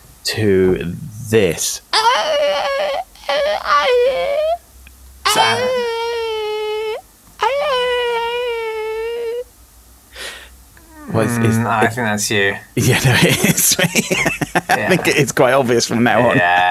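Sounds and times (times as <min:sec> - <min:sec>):
speech: 0:00.3 - 0:02.7, 0:05.4 - 0:05.8, 0:11.2 - 0:16.6
person whimpering and whining like a dog: 0:01.9 - 0:04.6, 0:05.3 - 0:09.4, 0:10.8 - 0:11.9
laughter: 0:05.3 - 0:05.9, 0:12.8 - 0:16.6.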